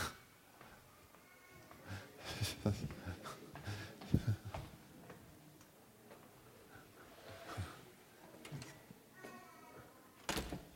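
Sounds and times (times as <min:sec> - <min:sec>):
faint voices murmuring: 0:00.0 - 0:10.2
lecture hall door being pushed shut with clunks and thuds: 0:10.2 - 0:10.7.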